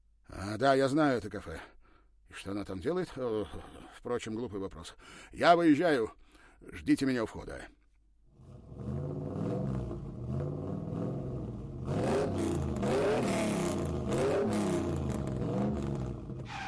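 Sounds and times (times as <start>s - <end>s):
speech: 0.4s - 1.7s, 2.3s - 7.8s
car engine rumbling while driving slowly through the night in Paris: 8.4s - 16.6s.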